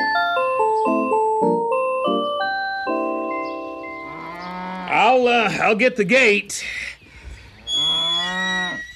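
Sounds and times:
tinkling chime-like melody: 0.0s - 4.3s
cows mooing with long wavering calls: 3.9s - 5.6s, 7.7s - 8.9s
speech: 5.1s - 6.9s.

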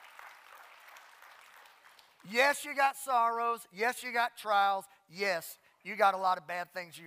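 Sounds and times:
audience applause: 0.0s - 2.2s
speech: 2.2s - 7.0s.

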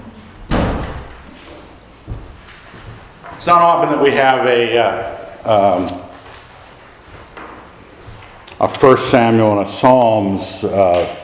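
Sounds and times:
door slamming shut: 0.4s - 1.4s
speech: 3.4s - 6.0s, 8.6s - 11.2s.

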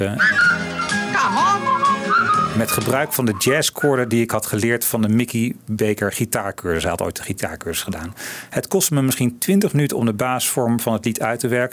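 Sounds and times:
speech: 0.0s - 0.4s, 2.6s - 11.7s
soft instrumental accompaniment: 0.0s - 4.1s
whistled melody of a song: 0.1s - 4.2s.

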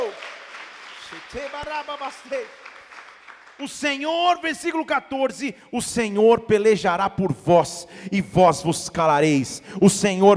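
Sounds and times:
audience applauding in worship: 0.0s - 4.0s
speech: 1.1s - 2.7s, 3.6s - 10.3s.

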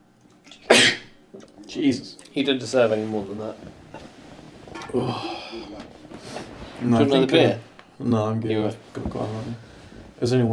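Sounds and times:
sharp sneeze: 0.7s - 1.2s
speech: 1.8s - 3.8s, 4.9s - 5.4s, 6.8s - 9.6s, 10.2s - 10.5s
faint intake of breath: 4.8s - 6.7s.

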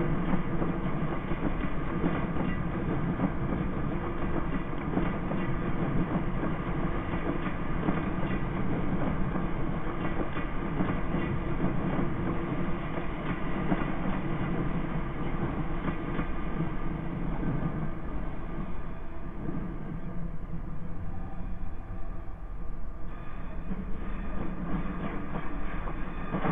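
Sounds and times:
British train rolling with a dense low rumble: 0.0s - 26.5s.

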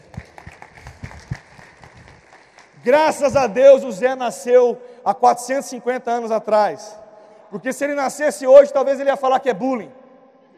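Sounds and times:
crowd applauding: 0.0s - 3.3s
speech: 2.8s - 10.0s.

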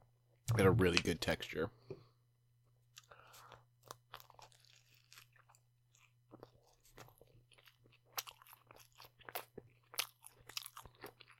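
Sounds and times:
speech: 0.5s - 2.0s
biting and chewing a sandwich: 2.8s - 11.3s.

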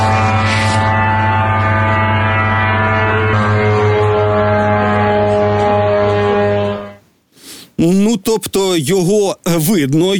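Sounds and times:
Iranian attack drone flying at low altitude: 0.0s - 7.0s
speech: 8.4s - 10.1s.

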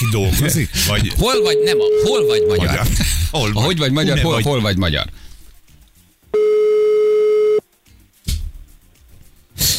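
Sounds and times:
speech: 0.0s - 5.2s
electronic ringback tone of a phone call: 1.3s - 2.7s, 6.4s - 7.6s.

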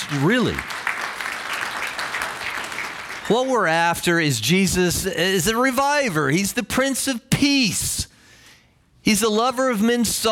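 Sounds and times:
church audience clapping: 0.0s - 4.2s
speech: 0.1s - 0.8s, 3.3s - 8.1s, 9.0s - 10.3s.

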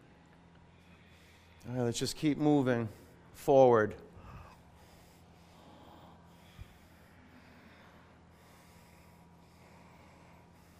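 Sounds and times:
ujjayi breathing through the throat during a yoga flow: 0.7s - 1.6s, 4.1s - 10.7s
speech: 1.6s - 4.0s.

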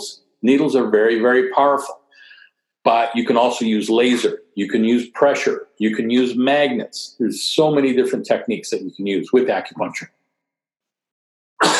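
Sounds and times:
speech: 0.0s - 2.0s, 2.8s - 10.2s
person sneezing: 4.0s - 4.4s, 11.6s - 11.7s.

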